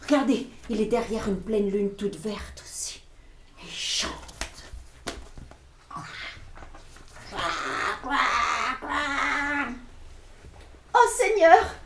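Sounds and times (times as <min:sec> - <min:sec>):
speech: 0:00.2 - 0:02.6
quiet taps and rustles: 0:04.2 - 0:05.7, 0:10.3 - 0:10.9
voice imitating a loud crow cawing: 0:07.2 - 0:09.8.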